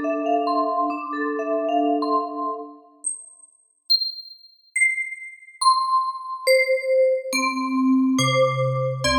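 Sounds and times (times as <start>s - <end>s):
noise glockenspiel struck instrument simulator: 0.1s - 9.1s.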